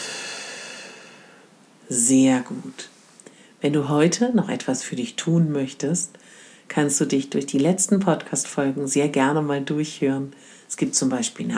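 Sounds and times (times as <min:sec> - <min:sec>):
long airy exhale through the mouth: 0:00.0 - 0:01.5
speech: 0:01.9 - 0:03.0, 0:03.6 - 0:11.5.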